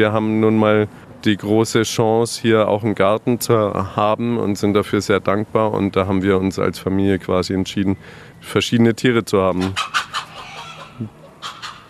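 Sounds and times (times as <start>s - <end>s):
speech: 0.0s - 10.1s
hens clucking: 9.4s - 11.8s
rooster calling: 9.6s - 11.8s.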